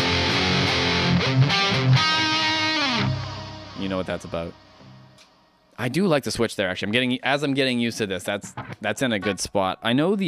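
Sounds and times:
distorted electric guitar through an Axe FX 2 preset with Roland GP100 echo: 0.0 - 5.4, 8.4 - 9.4
speech: 4.0 - 4.7, 5.8 - 10.2.

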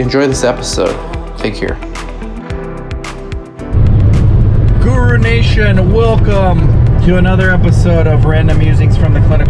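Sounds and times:
speech: 0.0 - 2.0, 5.1 - 9.4
tire rumble of a car cruising on a freeway: 3.6 - 9.4
car engine drone cruising at speed on a freeway: 3.7 - 9.4.

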